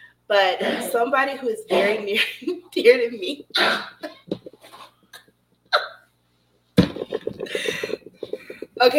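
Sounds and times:
speech: 0.3 - 4.2, 8.8 - 8.9
heavy rasping old-man-style coughing: 3.5 - 6.0, 7.0 - 8.9.

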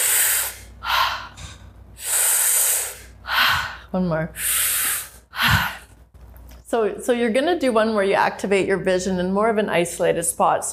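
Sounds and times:
long forceful exhale: 0.0 - 5.8
person panting in a breathing exercise, sharp hissing breaths through the mouth: 0.0 - 5.9
speech: 3.9 - 4.6, 6.7 - 10.7.

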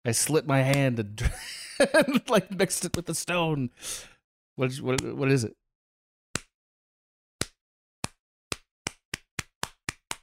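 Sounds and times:
speech: 0.0 - 5.6
laughter: 1.2 - 2.6
slow hand claps quickening: 7.4 - 10.2.

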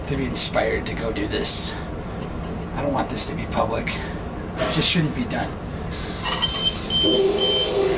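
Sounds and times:
steady engine-like hum: 0.0 - 7.9
speech: 0.1 - 2.0, 2.8 - 6.4, 7.0 - 7.9
short high and low electronic beeps: 6.0 - 7.8.

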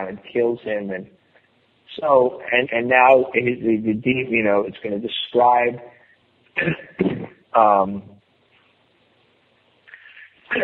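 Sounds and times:
speech: 0.0 - 1.2, 1.9 - 6.0, 6.6 - 8.1
person coughing: 6.6 - 7.4
voiced throat sound: 6.6 - 7.4.

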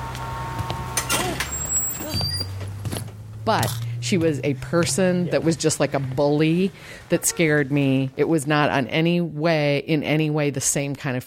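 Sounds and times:
city bus engine idling: 0.0 - 8.9
faint traffic noise: 0.0 - 9.9
speech: 3.5 - 11.2.

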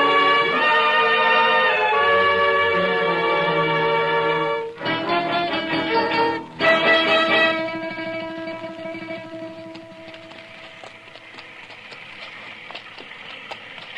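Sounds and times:
soft hiss: 0.0 - 11.7
rain on the frontier: 0.0 - 13.9
horse hooves clip-clopping in the rain on the frontier: 4.8 - 13.9.

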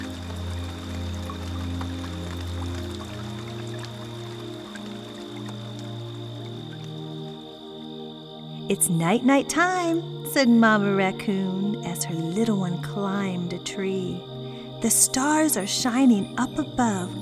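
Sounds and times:
steady rain falling: 0.0 - 8.0
speech: 8.7 - 17.1.

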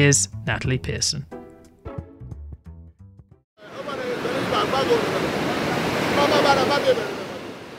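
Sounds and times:
speech: 0.0 - 1.3, 3.6 - 5.2, 6.1 - 7.3
ocean waves washing ashore along the coast of Ghana: 3.6 - 7.7.

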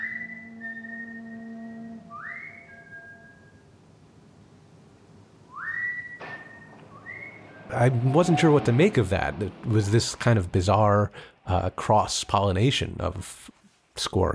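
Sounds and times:
man whistling a slow tune while walking down a street at night: 0.0 - 3.7, 5.5 - 7.6
speech: 7.7 - 14.3.

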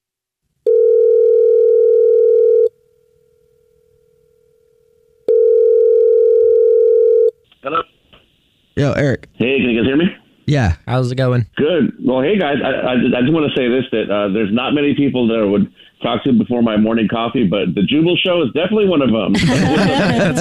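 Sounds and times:
long steady telephone ringback tones: 0.7 - 2.7, 5.3 - 7.3
speech: 8.8 - 20.3
laughter: 19.4 - 20.3.

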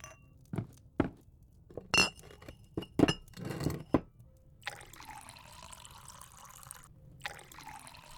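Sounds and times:
glasses clinking: 1.8 - 4.1
homemade moonshine pouring into glasses: 4.6 - 8.1.

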